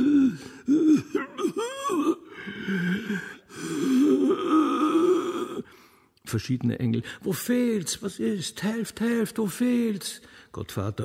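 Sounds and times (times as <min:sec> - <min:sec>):
man groaning and moaning hoarsely: 0:00.0 - 0:05.7
speech: 0:06.3 - 0:11.0.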